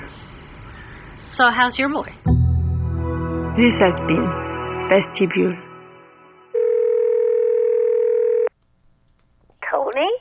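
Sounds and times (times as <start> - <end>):
speech: 1.4 - 2.4, 3.6 - 5.6, 9.9 - 10.2
telephone ringing tone over a phone line: 6.5 - 8.5.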